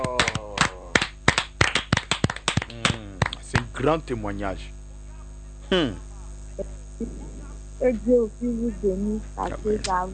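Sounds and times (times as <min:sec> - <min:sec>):
enthusiastic hand clapping during a church service: 0:00.0 - 0:03.9
speech: 0:03.8 - 0:04.8, 0:05.7 - 0:10.1.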